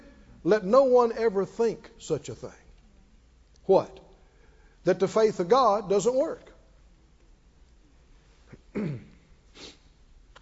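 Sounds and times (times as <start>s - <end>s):
speech: 0.4s - 2.6s, 3.7s - 4.0s, 4.8s - 6.5s
person sneezing: 8.7s - 9.9s.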